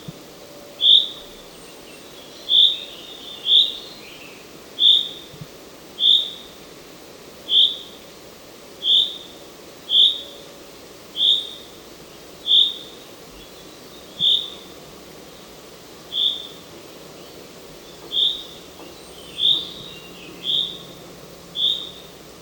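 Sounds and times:
quiet background hiss: 0.0 - 22.4
common chaffinch whistled call: 0.6 - 5.4, 6.0 - 6.6, 7.5 - 8.0, 8.8 - 10.5, 11.2 - 11.8, 12.4 - 14.8, 16.1 - 22.2.

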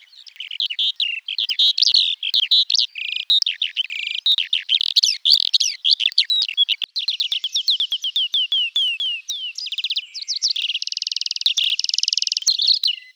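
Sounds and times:
bird song: 0.0 - 13.1.

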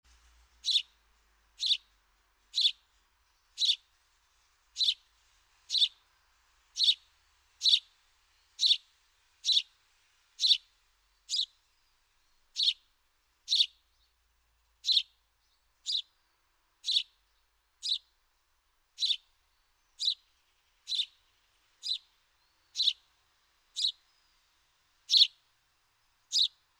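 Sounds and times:
House sparrow Passer domesticus giving loud bright chirps: 0.6 - 1.0, 1.6 - 1.9, 2.5 - 3.9, 4.8 - 5.0, 5.6 - 6.0, 6.8 - 9.7, 10.4 - 14.2, 14.8 - 18.2, 19.0 - 26.7.

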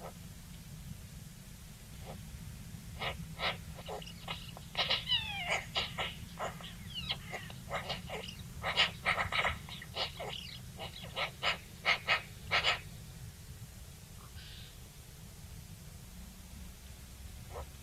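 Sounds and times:
steady low rumble: 0.0 - 17.8
Eurasian magpie Pica pica harsh rasping chacks and squeaky notes: 3.0 - 12.8.

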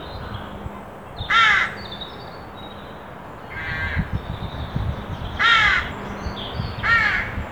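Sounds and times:
carrion crow Corvus corone giving harsh caws: 1.3 - 1.9, 3.5 - 4.1, 5.4 - 6.0, 6.8 - 7.4.

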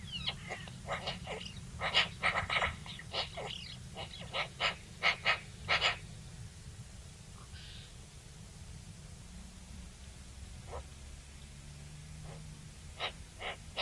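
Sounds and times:
Eurasian magpie chattering, Pica pica: 0.0 - 6.0, 12.2 - 13.8
low background hum: 0.0 - 13.8.

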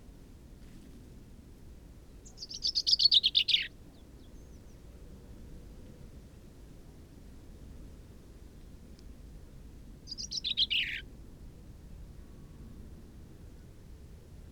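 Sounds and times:
common chaffinch Fringilla coelebs singing: 2.3 - 3.7, 10.1 - 11.0.

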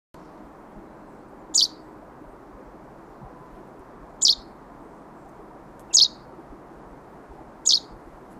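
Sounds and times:
faint low background hiss: 0.2 - 8.3
Common chaffinch Fringilla coelebs giving high-pitched calls: 1.5 - 1.9, 4.2 - 4.6, 5.8 - 6.3, 7.6 - 8.0.

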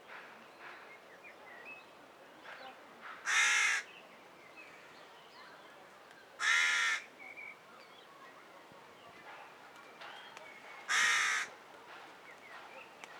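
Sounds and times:
carrion crow Corvus corone giving harsh hoarse caws: 3.3 - 3.8, 6.4 - 7.0, 10.9 - 11.5.

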